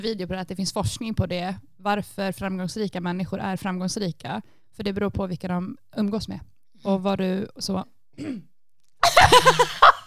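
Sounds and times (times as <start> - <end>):
speech: 0.0 - 8.5, 9.1 - 10.0
throat clearing: 8.2 - 8.5
laughter: 9.0 - 10.0.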